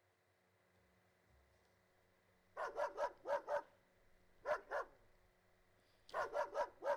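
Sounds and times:
dog barking in yappy bursts: 0:02.6 - 0:03.8, 0:04.4 - 0:05.0, 0:06.1 - 0:06.9.

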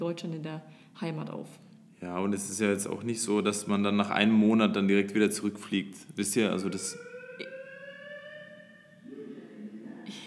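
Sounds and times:
speech: 0:00.0 - 0:07.5
building fire alarm sounding a steady electronic tone: 0:03.2 - 0:09.8.

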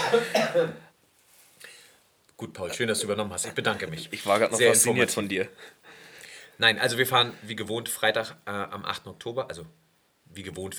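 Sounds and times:
person coughing harshly: 0:00.0 - 0:00.9
throat clearing with breathy rasps: 0:00.0 - 0:00.9
speech: 0:00.1 - 0:00.9, 0:02.4 - 0:06.0, 0:06.6 - 0:10.7.

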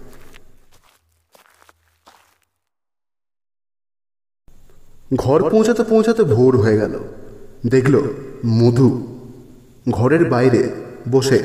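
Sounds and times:
footsteps walking along a road: 0:00.0 - 0:02.6
speech: 0:05.1 - 0:09.2, 0:09.8 - 0:11.4.

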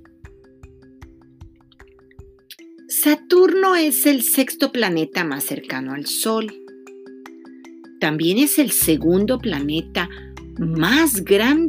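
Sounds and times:
water drips plopping: 0:01.4 - 0:02.7
speech: 0:03.0 - 0:06.6, 0:08.0 - 0:11.6.

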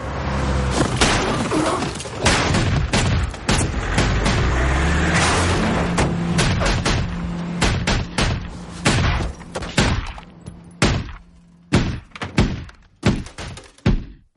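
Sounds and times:
gunshots fired at a car during a crime-thriller shootout: 0:01.0 - 0:14.2
sustained rumble: 0:02.6 - 0:11.7.

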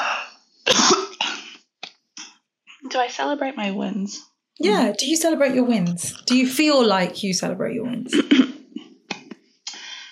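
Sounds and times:
person coughing: 0:00.7 - 0:01.6
speech: 0:02.9 - 0:08.6.

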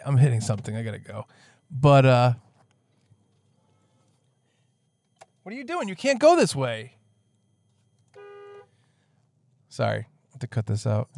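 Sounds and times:
speech: 0:00.0 - 0:02.5, 0:05.5 - 0:07.0, 0:09.7 - 0:11.1
loud car horn honk: 0:08.1 - 0:08.8.

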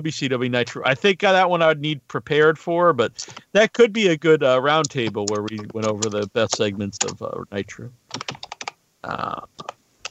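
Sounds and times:
speech: 0:00.0 - 0:08.4, 0:09.0 - 0:09.8
typing on a computer keyboard: 0:04.8 - 0:07.2, 0:08.1 - 0:08.8.

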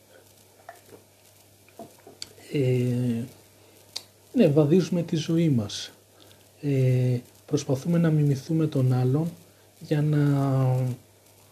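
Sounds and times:
small clicks and taps: 0:00.6 - 0:02.4
speech: 0:02.5 - 0:03.4, 0:04.4 - 0:06.0, 0:06.6 - 0:11.0.

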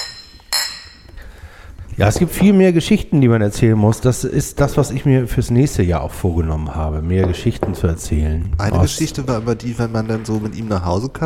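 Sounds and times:
glasses clinking in a toast: 0:00.0 - 0:01.2
speech: 0:02.0 - 0:11.2.

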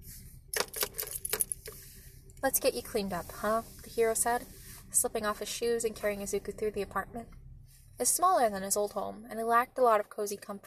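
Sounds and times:
keys jingling in a door lock: 0:00.6 - 0:01.7
speech: 0:02.4 - 0:07.4, 0:08.0 - 0:10.6.

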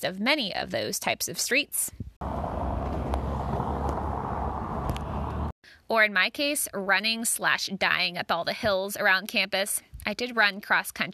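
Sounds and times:
speech: 0:00.0 - 0:02.4, 0:05.9 - 0:11.1
car tires rumbling on a brick road: 0:02.2 - 0:05.6.

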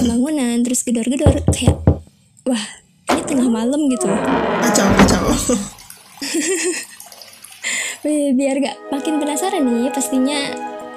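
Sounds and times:
speech: 0:00.3 - 0:06.9, 0:08.0 - 0:10.9
running water pouring from a tap: 0:05.5 - 0:08.0
laughter: 0:06.2 - 0:06.8.

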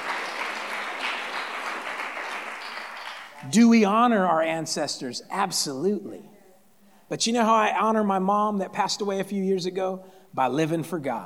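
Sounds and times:
crowd clapping: 0:00.0 - 0:03.5
speech: 0:03.4 - 0:06.3, 0:07.1 - 0:11.2.

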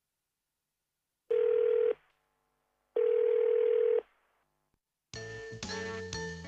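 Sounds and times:
telephone ringback tones while calling a service hotline: 0:01.3 - 0:02.0, 0:03.0 - 0:04.0.

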